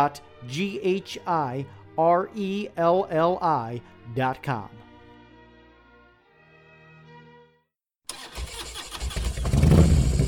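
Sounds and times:
speech: 0.0 - 4.8
motorcycle engine kickstarted and revving: 8.1 - 10.2.

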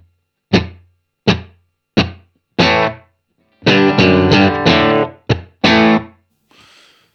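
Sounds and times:
heavily distorted electric guitar through an amp pedal playing chords: 0.5 - 6.2.

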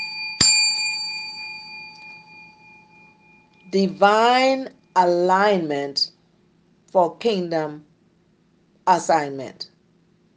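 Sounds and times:
single sharp metallic bell strike ringing: 0.0 - 3.8
speech: 3.7 - 6.1, 6.9 - 7.9, 8.8 - 9.7.

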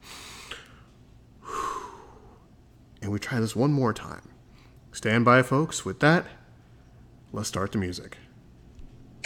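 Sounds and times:
person taking a deep breath: 0.0 - 0.8, 1.4 - 2.4
speech: 3.1 - 4.4, 5.0 - 6.4, 7.3 - 8.2.

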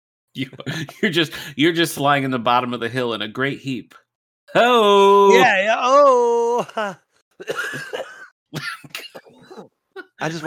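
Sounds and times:
speech: 0.4 - 9.0, 9.6 - 10.4
unwell person coughing in harsh rasping bursts: 7.4 - 10.2.

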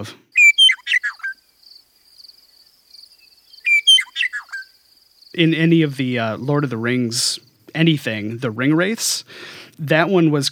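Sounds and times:
speech: 0.0 - 0.2, 5.4 - 10.5
meadowlark singing clear whistles and slurred notes: 0.3 - 1.5, 3.1 - 4.8.

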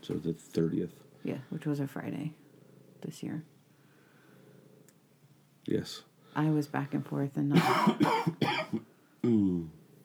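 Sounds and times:
speech: 0.0 - 2.4, 3.0 - 3.5, 5.6 - 9.8
person coughing: 7.6 - 9.5
throat clearing: 7.6 - 9.6.

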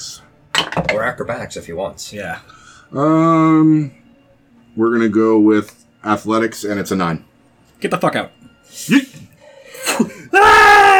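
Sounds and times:
speech: 0.8 - 4.0, 4.8 - 9.2
Wilhelm scream with breathy vocal lead-in: 10.3 - 10.9.

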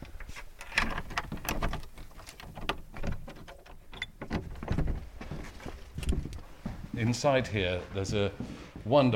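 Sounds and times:
clunks, rattles and scrapes of a door: 0.0 - 6.4
door opening as people go inside: 0.0 - 6.5
speech: 7.0 - 9.1.

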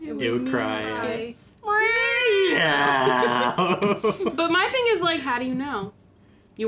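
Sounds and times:
speech: 0.2 - 6.0
human voice imitating a cat's meow: 2.0 - 3.6
laughter: 2.5 - 4.6.

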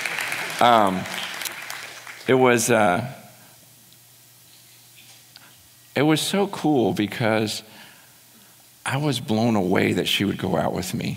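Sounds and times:
audience applause: 0.0 - 2.4
speech: 0.6 - 1.2, 2.3 - 3.2, 6.0 - 7.8, 8.8 - 11.1.

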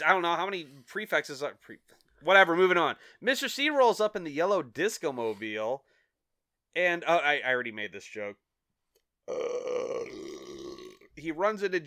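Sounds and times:
speech: 0.0 - 5.9, 6.8 - 8.4, 9.3 - 10.6, 11.2 - 11.8
long loud burp: 9.2 - 11.2.

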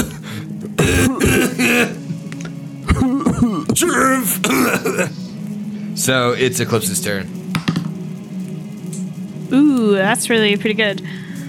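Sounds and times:
person clearing throat: 0.8 - 2.0, 2.9 - 5.1
person coughing: 0.8 - 2.0, 2.9 - 5.1
speech: 0.8 - 2.0, 3.8 - 5.2, 6.0 - 7.7, 9.5 - 11.2.

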